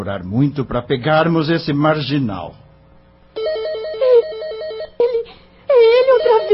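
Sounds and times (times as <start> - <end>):
speech: 0.0 - 2.6
telephone ringing with a warbling electronic trill: 3.4 - 5.0, 6.0 - 6.5.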